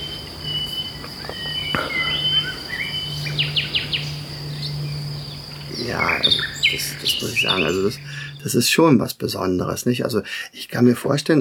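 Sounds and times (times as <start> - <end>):
steady low hum: 0.0 - 8.4
Common Nightingale song, lament strophe: 0.0 - 8.6
speech: 5.8 - 11.3.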